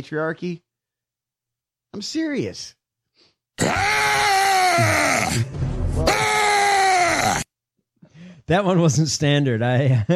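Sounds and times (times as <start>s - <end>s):
speech: 0.0s - 0.6s, 1.9s - 2.8s, 3.6s - 6.2s, 8.5s - 10.1s
screaming sound effect played from a soundboard: 3.6s - 7.5s.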